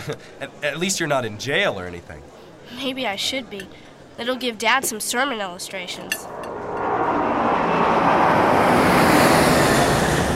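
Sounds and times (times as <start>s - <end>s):
speech: 0.0s - 6.6s
loud airplane passing overhead: 6.0s - 10.3s.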